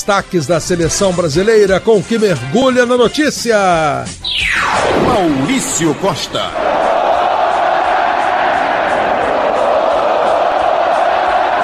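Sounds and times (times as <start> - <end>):
speech: 0.0 - 6.9
huge stadium crowd chanting olé: 6.5 - 11.6.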